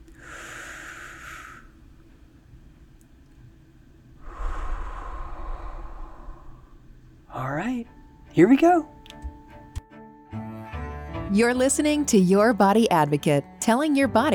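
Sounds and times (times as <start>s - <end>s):
person taking a deep relaxing breath: 0.1s - 1.8s, 4.2s - 7.3s
speech: 7.4s - 8.9s, 11.3s - 14.3s.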